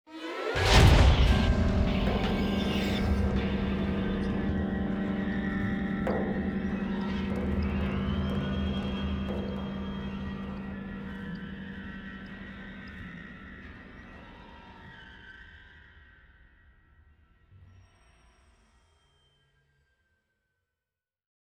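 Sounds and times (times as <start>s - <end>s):
shock riser sound effect: 0.2s - 11.0s.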